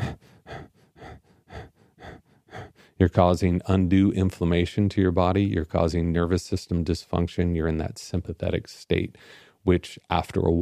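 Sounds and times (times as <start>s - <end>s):
person imitating rapid shallow breathing while stooped over: 0.0s - 3.1s, 9.2s - 9.6s
speech: 3.0s - 10.6s.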